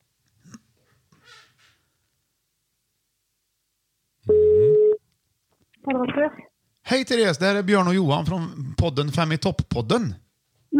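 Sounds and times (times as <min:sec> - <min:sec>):
telephone ringback tone during outgoing call: 0:04.3 - 0:05.0
speech: 0:06.1 - 0:10.2.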